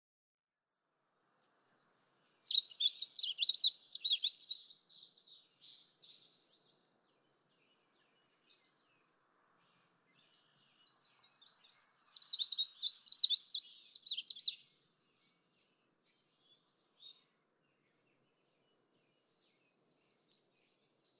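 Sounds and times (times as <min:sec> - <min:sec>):
Magnolia Warbler singing: 0:01.4 - 0:21.1.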